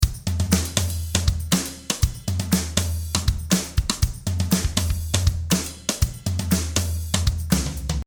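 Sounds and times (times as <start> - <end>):
dry drum: 0.0 - 8.0.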